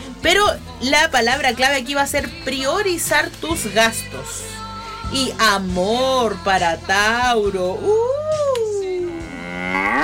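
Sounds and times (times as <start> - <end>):
speech: 0.2 - 4.5, 5.1 - 8.2, 9.7 - 10.0
cow mooing: 9.1 - 10.0.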